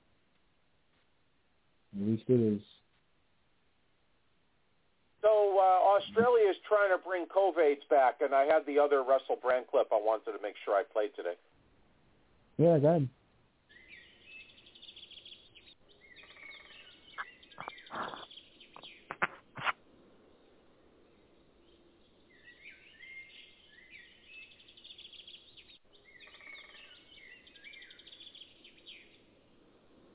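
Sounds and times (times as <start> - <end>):
speech: 2.1 - 2.8, 6.1 - 11.6, 12.6 - 13.2
woodpeckers chirping and calling outdoors: 13.7 - 19.7, 21.1 - 29.3
woodpecker rapid knocking bursts: 16.2 - 19.8.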